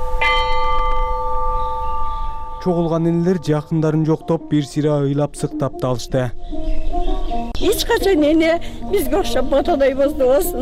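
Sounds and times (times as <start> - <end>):
peace bell struck at a memorial ceremony: 0.0 - 4.2
speech: 2.6 - 6.7, 7.6 - 10.5.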